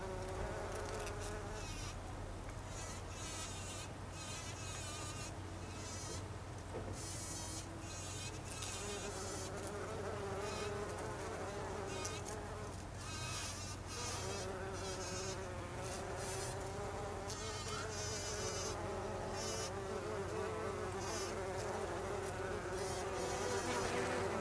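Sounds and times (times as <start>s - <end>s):
bumblebee buzzing: 0.0s - 2.0s, 2.6s - 6.3s, 7.0s - 24.3s
continuous low hum: 0.0s - 24.3s.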